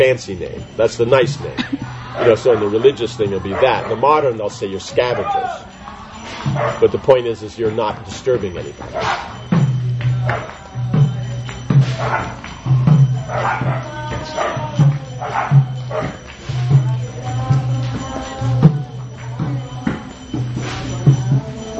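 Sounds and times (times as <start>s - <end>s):
speech: 0.0s - 5.8s, 6.4s - 9.4s, 10.2s - 10.6s
dogs in Vrindavan barking and yowling: 0.0s - 20.3s
regular rhythmic beat of people's music: 0.0s - 21.7s
laughter: 0.5s - 8.8s.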